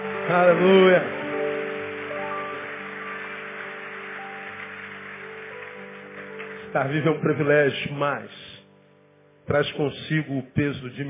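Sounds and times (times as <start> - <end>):
audience applauding: 0.0 - 7.4
sustained keyboard chords: 0.0 - 11.0
speech: 0.3 - 1.2, 6.8 - 8.5, 9.5 - 11.0.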